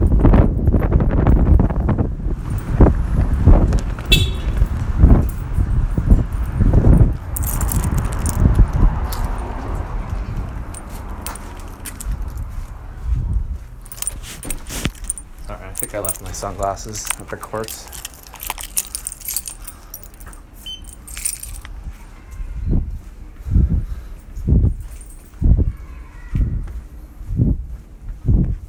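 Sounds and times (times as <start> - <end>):
strong wind blowing in gusts: 0.0 - 15.3, 22.6 - 28.6
speech: 16.4 - 18.0.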